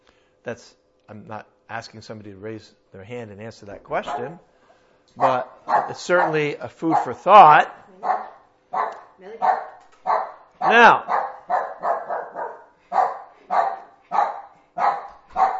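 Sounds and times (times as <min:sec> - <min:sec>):
speech: 0:00.4 - 0:04.5, 0:05.1 - 0:08.1, 0:10.7 - 0:11.2
dog barking: 0:04.0 - 0:04.4, 0:05.2 - 0:15.5.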